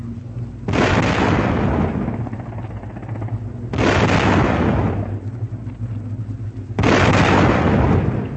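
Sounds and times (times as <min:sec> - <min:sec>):
ship deck guns firing at attacking aircraft: 0:00.7 - 0:05.1, 0:06.8 - 0:08.2.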